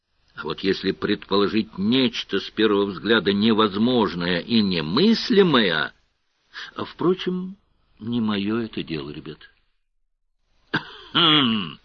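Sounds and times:
speech: 0.4 - 6.0, 6.6 - 9.5, 10.7 - 11.8
man coughing into his fist: 10.7 - 11.8.

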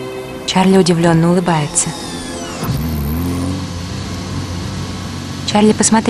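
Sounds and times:
speech: 0.5 - 2.9, 5.5 - 6.0
car engine accelerating in second gear: 1.1 - 6.0.

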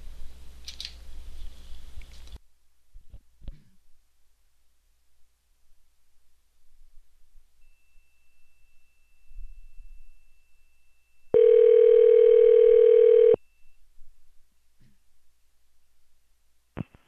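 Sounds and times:
hotel room telephone dial tone: 11.4 - 13.4.

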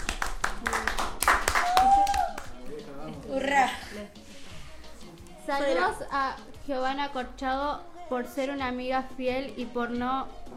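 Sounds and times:
small group applauding: 0.0 - 3.3
speech: 5.5 - 10.5.

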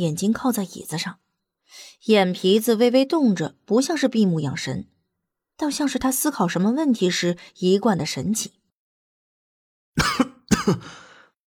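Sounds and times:
speech: 0.0 - 4.9, 5.6 - 8.6
person coughing dryly: 10.0 - 11.1.

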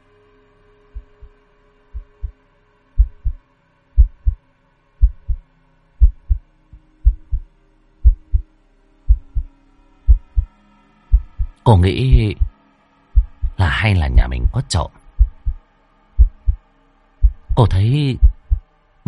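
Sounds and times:
faint hum: 0.0 - 10.5, 13.2 - 19.0
heartbeat pounding in deep low double thumps: 1.0 - 1.4, 2.0 - 2.4, 3.0 - 3.4, 4.0 - 4.4, 5.0 - 5.4, 6.0 - 7.4, 8.0 - 8.5, 9.1 - 9.5, 10.1 - 10.5, 11.1 - 12.5, 13.2 - 15.6, 16.2 - 16.6, 17.2 - 18.6
speech: 11.7 - 12.4, 13.8 - 15.0, 17.6 - 18.3.

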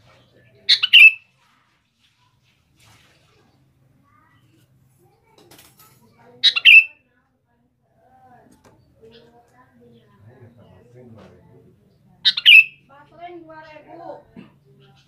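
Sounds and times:
sooty-headed bulbul singing bubbly chirped phrases: 0.7 - 1.2, 6.4 - 6.9, 12.2 - 12.8.

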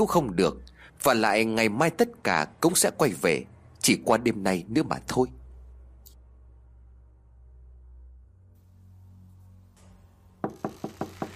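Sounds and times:
speech: 0.0 - 5.4
low hum: 0.0 - 10.5
knocking on a room door: 10.4 - 11.3.

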